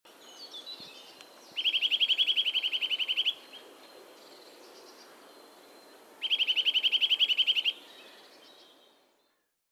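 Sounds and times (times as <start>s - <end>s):
Eurasian nuthatch Sitta europaea piping calls: 1.6s - 3.6s, 6.2s - 7.8s.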